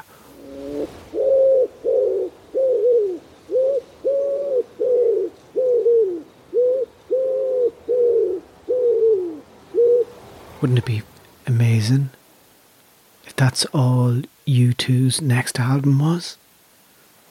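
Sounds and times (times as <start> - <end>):
wood pigeon cooing: 0.0 - 10.2
speech: 10.6 - 12.2, 13.4 - 16.4.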